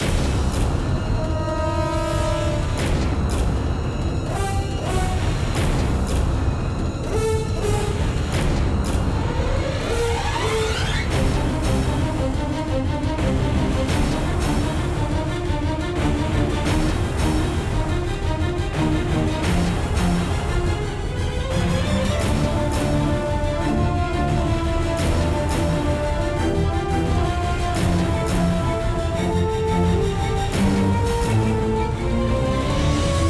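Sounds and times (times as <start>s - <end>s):
boss battle background game music: 0.0s - 10.2s, 11.0s - 33.2s.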